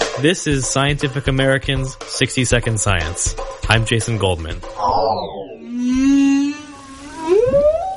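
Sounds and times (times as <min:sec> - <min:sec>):
speech: 0:00.2 - 0:05.5
humpback whale singing: 0:04.8 - 0:07.9.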